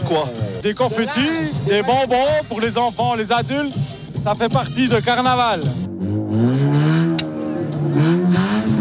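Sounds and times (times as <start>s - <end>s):
speech: 0.1s - 6.5s
carnival car engine revving hard at takeoff: 4.1s - 8.8s.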